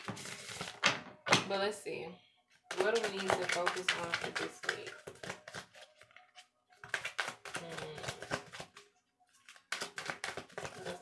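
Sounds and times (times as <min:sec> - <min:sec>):
speech: 0:01.5 - 0:05.2
playing cards being shuffled: 0:02.7 - 0:06.2, 0:06.8 - 0:08.8, 0:09.4 - 0:11.0.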